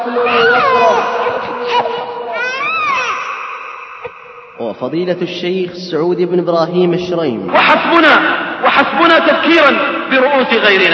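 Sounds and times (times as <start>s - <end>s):
child screaming and crying: 0.0s - 4.2s
busy noise: 0.0s - 4.6s
speech: 4.6s - 10.9s.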